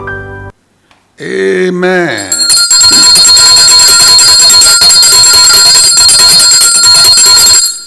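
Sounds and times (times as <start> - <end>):
speech: 1.2 - 2.3
loud bright bell ringing with a rapid metallic shimmer: 2.2 - 7.8.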